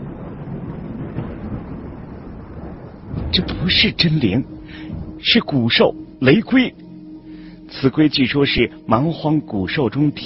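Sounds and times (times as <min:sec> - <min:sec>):
deep continuous rumbling roar: 0:00.0 - 0:07.7
speech: 0:03.3 - 0:06.8, 0:07.7 - 0:10.2.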